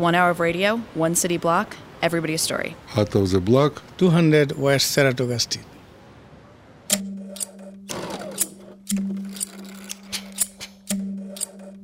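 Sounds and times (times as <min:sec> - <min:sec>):
speech: 0:00.0 - 0:05.7
crisp scissor snips in a sewing workshop: 0:06.9 - 0:11.8
sewing machine whirring in short bursts: 0:07.4 - 0:10.4.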